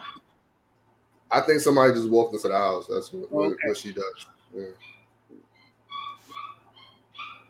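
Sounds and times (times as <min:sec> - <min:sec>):
low hum: 0:00.0 - 0:07.4
speech: 0:01.3 - 0:05.0
dog whining and yipping: 0:04.8 - 0:07.4.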